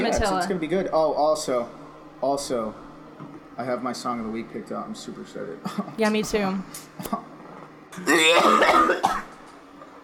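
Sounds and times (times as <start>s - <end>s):
speech: 0.0s - 7.3s, 8.0s - 9.3s
person hacking through a raspy coughing fit: 8.0s - 9.4s.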